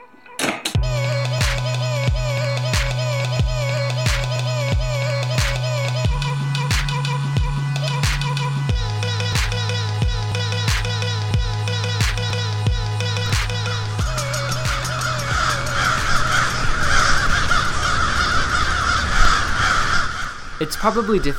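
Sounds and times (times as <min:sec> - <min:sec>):
steady rhythmic thumping: 0:00.4 - 0:16.6
low hum: 0:00.8 - 0:19.4
huge flock of crows cawing: 0:13.5 - 0:21.3
speech: 0:20.7 - 0:21.3.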